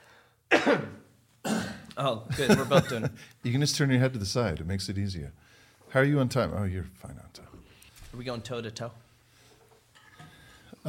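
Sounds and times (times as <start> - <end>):
person coughing harshly: 0.5 - 1.9, 2.5 - 3.1
speech: 0.6 - 1.0, 2.0 - 9.0
laughter: 2.3 - 3.2.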